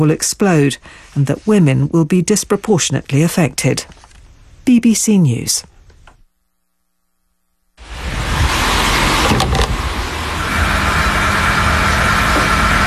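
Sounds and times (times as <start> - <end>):
speech: 0.0 - 4.0, 4.6 - 5.7
faint hum: 0.0 - 12.8
pump whirring while pumping diesel fuel into a vehicle: 7.8 - 12.8.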